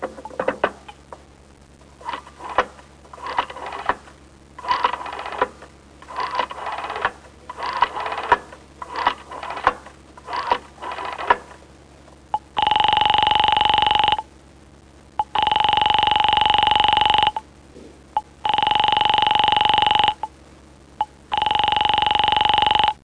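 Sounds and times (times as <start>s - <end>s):
household clock phone dial ring: 2.0s - 4.0s, 4.6s - 11.4s, 12.4s - 14.2s, 15.2s - 17.4s, 18.4s - 20.3s, 21.3s - 23.0s.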